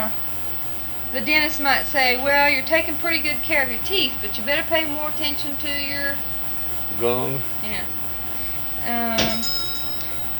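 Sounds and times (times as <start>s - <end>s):
low hum: 0.0s - 10.3s
speech: 1.1s - 6.3s, 6.9s - 8.0s, 8.8s - 9.6s
bells ringing: 9.1s - 10.3s.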